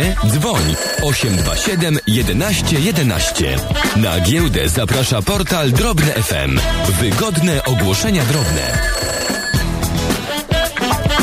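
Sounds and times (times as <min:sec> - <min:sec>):
telephone ringing with a bright melodic electronic tone: 0:00.0 - 0:04.2, 0:07.2 - 0:10.4
speech: 0:00.1 - 0:09.0.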